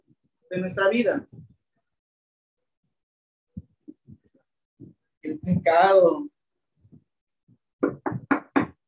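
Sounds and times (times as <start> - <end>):
speech: 0.5 - 1.4, 5.6 - 6.3
knocking on a door: 7.8 - 8.8.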